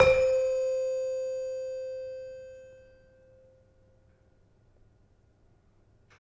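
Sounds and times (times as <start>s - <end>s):
gamelan demung struck hard: 0.0s - 1.1s.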